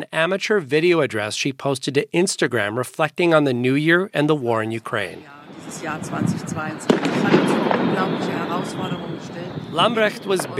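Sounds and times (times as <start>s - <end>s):
speech: 0.2s - 10.5s
New Year's Eve fireworks crackling and popping in Berlin: 5.1s - 10.5s.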